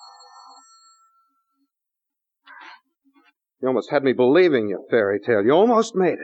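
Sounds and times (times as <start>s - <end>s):
telephone ringing with a bright electronic tone: 0.0s - 1.8s
speech: 3.6s - 6.2s.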